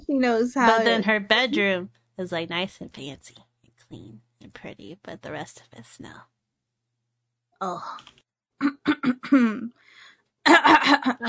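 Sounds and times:
speech: 0:00.1 - 0:06.3, 0:07.6 - 0:09.8, 0:10.4 - 0:11.2
throat clearing from phlegm after laughing: 0:08.6 - 0:09.7.

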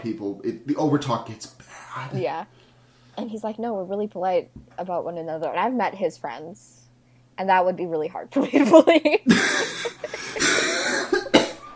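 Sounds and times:
speech: 0:00.0 - 0:06.8, 0:07.4 - 0:10.5
laughter: 0:08.5 - 0:11.4
raspy coughs: 0:09.3 - 0:11.7.

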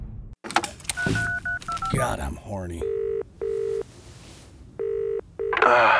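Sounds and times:
telephone keypad dialing tones: 0:00.5 - 0:02.1, 0:02.8 - 0:03.8, 0:04.8 - 0:05.7
speech: 0:01.1 - 0:01.3, 0:01.9 - 0:03.1, 0:05.7 - 0:05.9.

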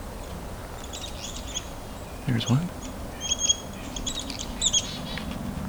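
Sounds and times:
chickadees calling: 0:00.2 - 0:05.5
speech: 0:02.3 - 0:02.8.

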